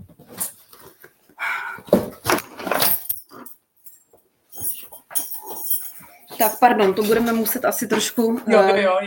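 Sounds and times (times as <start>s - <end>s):
keys jangling while being searched for: 2.7s - 7.8s
speech: 6.4s - 9.0s.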